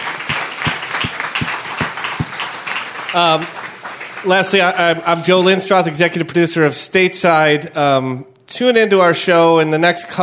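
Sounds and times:
audience applause with dense steady clapping: 0:00.0 - 0:04.8
speech: 0:03.1 - 0:03.6, 0:04.2 - 0:10.2.

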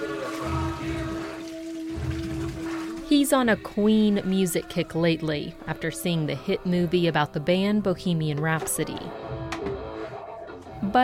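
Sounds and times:
water pouring into a slushy machine: 0:00.0 - 0:03.1
speech: 0:03.1 - 0:09.2.

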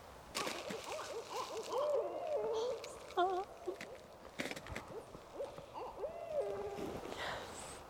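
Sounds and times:
barred owls hooting and cackling in the tree line: 0:00.4 - 0:07.1.

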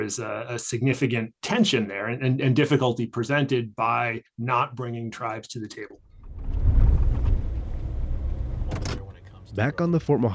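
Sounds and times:
speech: 0:00.0 - 0:06.0, 0:09.5 - 0:10.3
pickup truck engine rumbling on a dirt road: 0:06.0 - 0:10.2.

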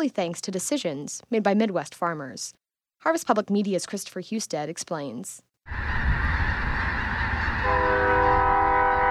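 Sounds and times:
speech: 0:00.0 - 0:06.1
large flock of snow geese honking and cackling: 0:05.7 - 0:09.1
steady horn-like tone: 0:05.7 - 0:09.1.

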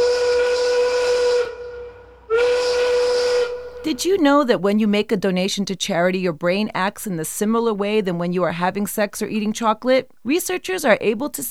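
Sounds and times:
quitting-time factory steam whistle blasting with hiss: 0:00.0 - 0:04.0
speech: 0:03.8 - 0:11.4.

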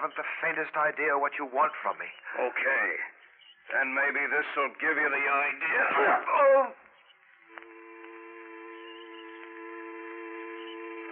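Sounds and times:
speech: 0:00.0 - 0:06.8
low dull droning buzz in a man's ears: 0:06.2 - 0:11.1.

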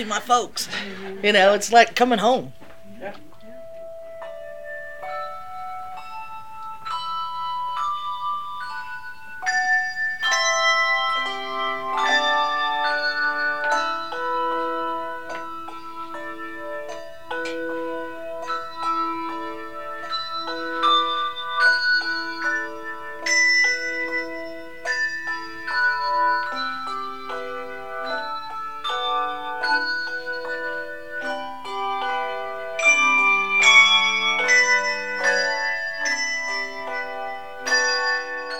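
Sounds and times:
speech: 0:00.0 - 0:03.3
handbell ensemble playing a steady melody: 0:00.0 - 0:38.5.

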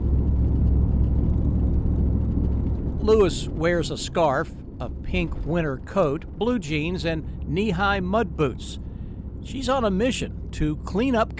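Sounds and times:
pickup truck engine and tire noise driving across a bridge: 0:00.0 - 0:11.3
speech: 0:03.1 - 0:11.3.

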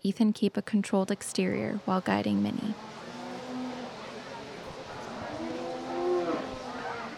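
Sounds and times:
speech: 0:00.0 - 0:03.0
outdoor noise: 0:00.0 - 0:07.1
cow mooing at a cattle showmanship class: 0:02.8 - 0:07.1.

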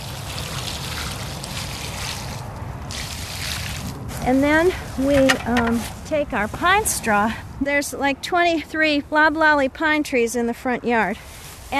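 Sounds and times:
water trickling onto soil while watering a newly planted plant: 0:00.0 - 0:06.8
speech: 0:04.2 - 0:11.7.

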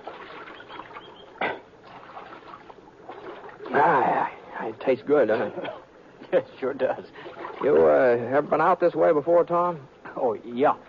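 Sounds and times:
creek water splashing and gurgling as horses drink: 0:00.0 - 0:04.4, 0:07.2 - 0:08.2
speech: 0:04.7 - 0:10.8.

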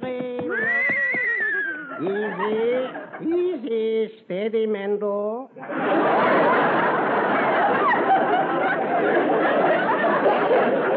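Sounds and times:
horse whinnying: 0:00.5 - 0:02.0
laughter: 0:00.5 - 0:03.6, 0:05.6 - 0:10.9
speech: 0:02.0 - 0:10.9.

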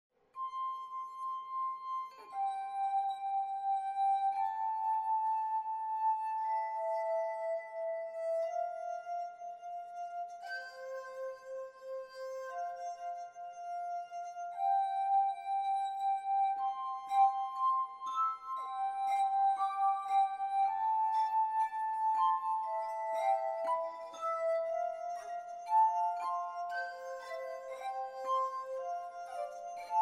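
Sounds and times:
glass harmonica played with both hands: 0:00.4 - 0:29.9.

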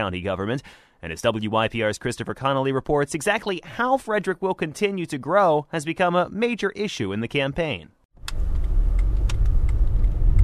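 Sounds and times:
speech: 0:00.0 - 0:08.4
car engine and road noise on a two-lane country road: 0:08.2 - 0:10.4.

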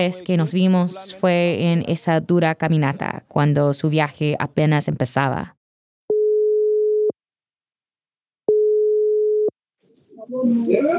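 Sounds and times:
speech: 0:00.0 - 0:05.6, 0:10.3 - 0:10.9
WhatsApp video call ringing tone: 0:06.1 - 0:07.2, 0:08.5 - 0:09.6.

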